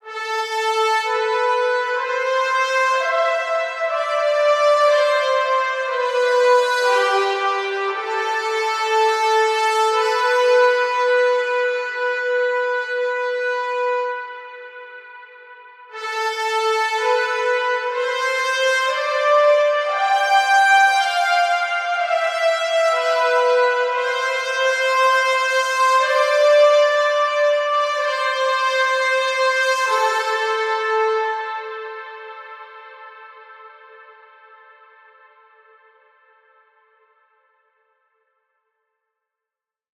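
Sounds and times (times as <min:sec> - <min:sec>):
horns playing in A minor at 120 BPM: 0:00.1 - 0:34.1.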